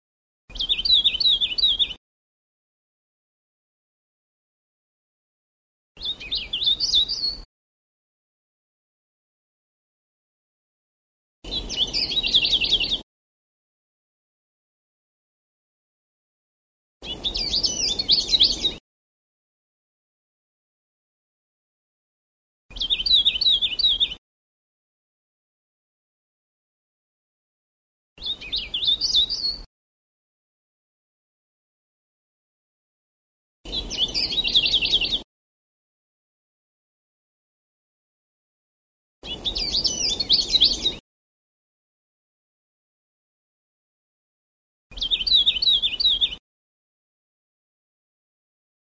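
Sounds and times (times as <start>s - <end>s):
Sulawesi cikrak bird chirping: 0.5s - 2.0s, 6.0s - 7.5s, 11.5s - 13.0s, 17.0s - 18.8s, 22.7s - 24.2s, 28.2s - 29.7s, 33.7s - 35.2s, 39.2s - 41.0s, 44.9s - 46.4s.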